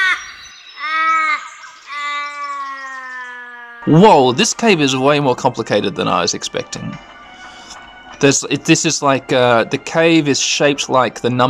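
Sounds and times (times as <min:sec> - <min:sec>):
Australian raven wailing caws: 0:00.0 - 0:03.9
speech: 0:03.8 - 0:07.1, 0:08.2 - 0:11.4.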